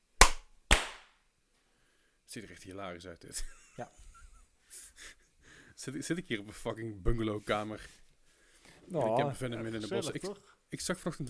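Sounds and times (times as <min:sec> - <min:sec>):
sharp loud hand claps to sync a recording: 0:00.1 - 0:01.1
speech: 0:02.3 - 0:04.1, 0:05.8 - 0:08.0, 0:08.9 - 0:11.2
laughter: 0:09.0 - 0:10.4.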